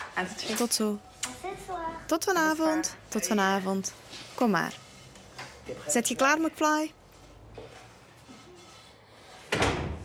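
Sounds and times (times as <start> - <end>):
speech: 0.2 - 4.8, 5.6 - 7.0
door opening or shutting as people go out: 9.5 - 10.0.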